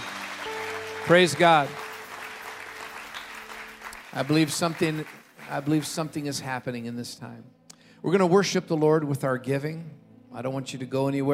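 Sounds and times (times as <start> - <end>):
church congregation clapping hands during a worship service: 0.0 - 6.8
speech: 1.0 - 1.8, 4.1 - 11.3.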